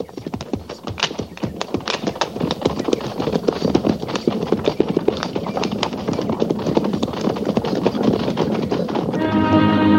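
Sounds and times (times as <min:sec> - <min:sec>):
cavalry troop of horses trotting: 0:00.0 - 0:09.8.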